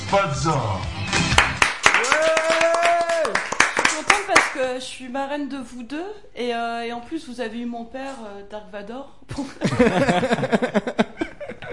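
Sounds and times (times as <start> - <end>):
speech: 0.1 - 1.3, 4.3 - 11.1
room full of people applauding: 1.2 - 4.6
long sustained vocal cheer: 1.9 - 3.4
laughter: 9.4 - 11.7.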